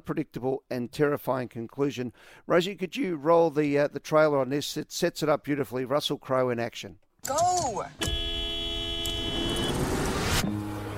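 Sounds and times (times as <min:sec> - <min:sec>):
speech: 0:00.0 - 0:08.2
low road noise: 0:07.2 - 0:10.9
car horn honk: 0:07.9 - 0:10.4.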